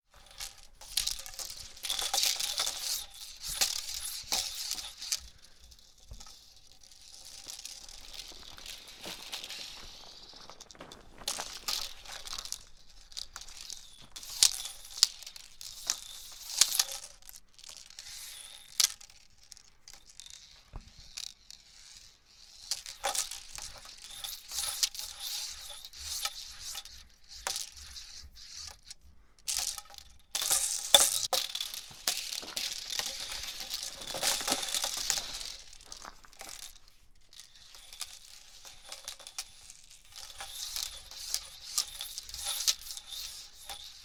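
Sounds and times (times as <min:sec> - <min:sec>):
hula hoop spinning: 0:00.1 - 0:44.0.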